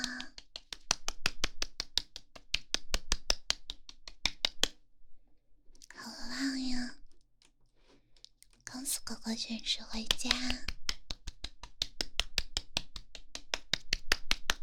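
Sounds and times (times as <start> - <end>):
rhythmic hand clapping at home: 0.0 - 4.8, 9.9 - 14.6
speech: 9.0 - 10.7.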